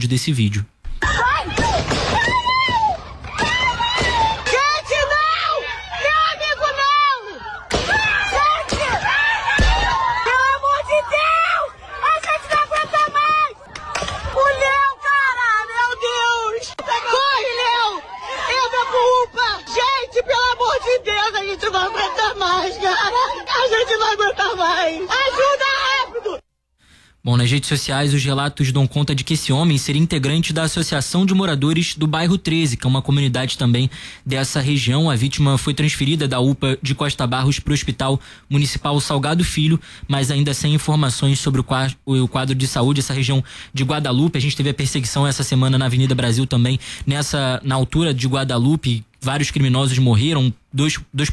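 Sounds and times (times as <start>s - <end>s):
speech: 0.0s - 0.8s, 27.5s - 51.3s
people screaming and shouting frantically a man's name after a shooting: 0.9s - 26.4s
agitated crowd chatter: 3.0s - 26.4s.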